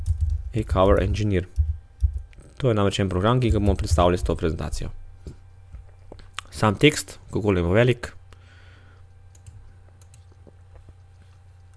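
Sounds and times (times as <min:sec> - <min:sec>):
typing text on a computer keyboard: 0:00.0 - 0:00.5, 0:09.3 - 0:10.3
steady low electrical hum: 0:00.0 - 0:11.7
speech: 0:00.5 - 0:01.6, 0:02.6 - 0:05.4, 0:06.6 - 0:08.2.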